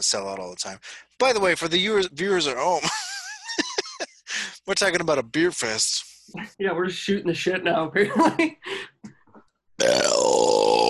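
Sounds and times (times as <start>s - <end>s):
speech: 0.0s - 3.7s, 4.7s - 8.8s
laughter: 2.4s - 5.3s, 8.0s - 8.9s
loud drawn-out raspy belch: 9.8s - 10.8s.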